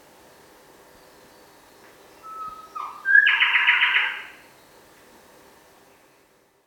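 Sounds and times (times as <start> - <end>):
Bower's shrikethrush Colluricincla boweri call: 2.2 - 4.4.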